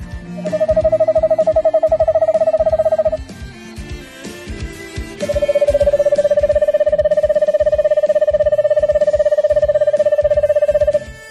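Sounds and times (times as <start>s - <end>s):
eastern screech owl trilling song: 0.3s - 3.2s, 5.2s - 11.1s.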